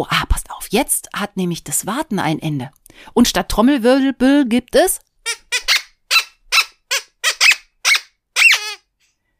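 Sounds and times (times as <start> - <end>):
speech: 0.0 - 5.7
rubber squeaky toy squeezed: 5.2 - 8.9.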